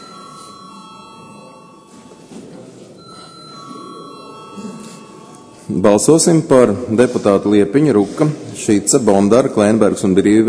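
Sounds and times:
electric bell rung in a parliament chamber to call a vote: 0.0 - 6.5
faint murmur: 0.0 - 10.4
speech: 5.7 - 10.4.

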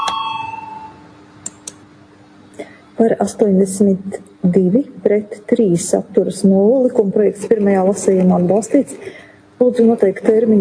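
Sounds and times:
bell ding calling a vote in parliament: 0.0 - 1.0
speech: 2.6 - 10.6.

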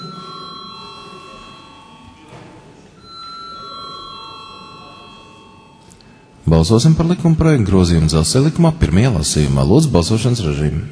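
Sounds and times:
electric bell ringing in a parliament chamber before a vote: 0.0 - 2.3, 3.0 - 6.0
low noise: 0.0 - 10.9
speech: 6.5 - 10.9.

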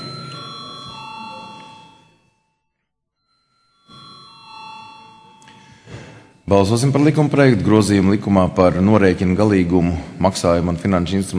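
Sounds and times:
parliament chamber electric bell ringing before a vote: 0.0 - 7.5
speech: 6.5 - 11.3.

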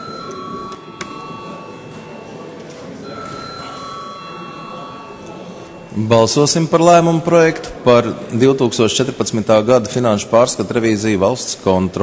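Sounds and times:
faint murmur over noisy background: 0.0 - 6.4
parliament bell ringing to call members to vote: 0.0 - 7.3
speech: 6.0 - 12.0.

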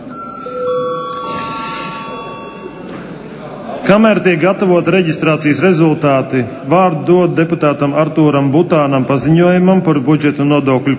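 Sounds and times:
electronic bell chime signalling registration mode in a parliament chamber: 0.0 - 3.3
speech: 3.9 - 10.9.

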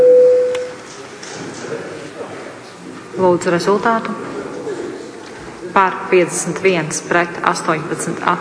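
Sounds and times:
electronic voting signal tone in the Latvian parliament: 0.0 - 0.8
faint murmur: 0.4 - 8.4
speech: 3.2 - 4.3, 5.8 - 8.4.

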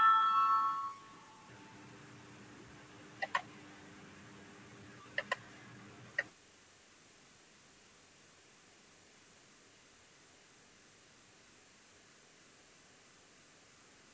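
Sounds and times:
electronic bell signal tone calling a vote in a parliament: 0.0 - 1.5
sharp soft clicks: 5.2 - 5.4.

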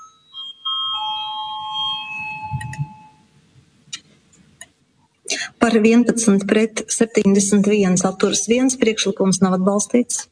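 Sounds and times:
bell ringing in a parliament chamber before a vote: 0.0 - 3.4
speech: 5.6 - 10.3.

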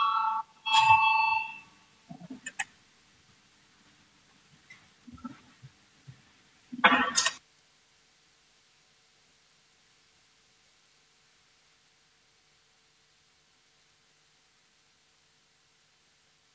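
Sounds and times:
bright electronic parliament voting bell chiming before a vote: 0.0 - 1.6.

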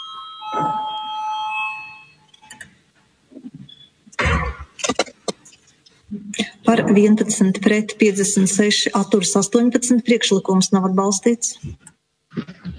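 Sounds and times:
electric voting bell ringing in a parliament chamber: 0.0 - 2.5
speech: 6.7 - 11.9.

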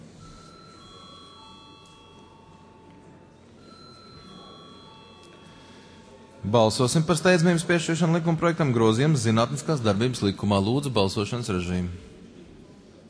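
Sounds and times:
low room murmur: 0.0 - 13.0
parliament voting call bell ringing: 0.2 - 6.4
speech: 6.5 - 12.1.

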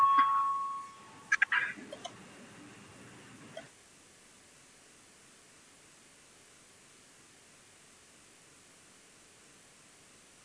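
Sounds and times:
electronic chime of a parliament voting bell: 0.0 - 1.3
quiet hum: 0.0 - 10.4.

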